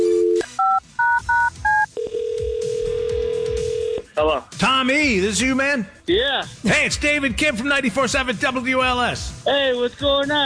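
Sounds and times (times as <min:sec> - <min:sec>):
steady telephone dial tone: 0:00.0 - 0:04.0
speech: 0:04.2 - 0:10.4.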